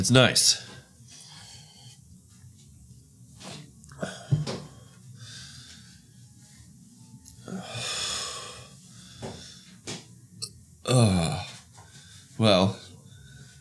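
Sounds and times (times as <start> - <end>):
speech: 0.0 - 0.7, 10.9 - 11.3, 12.4 - 12.8
short throaty burp: 10.9 - 11.5.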